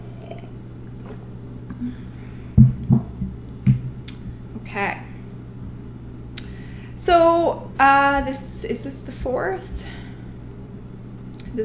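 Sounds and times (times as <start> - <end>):
person gulping a glass of water: 0.0 - 1.9
faint steady hum: 0.0 - 11.6
speech: 1.8 - 2.1, 4.8 - 5.0, 7.0 - 9.9.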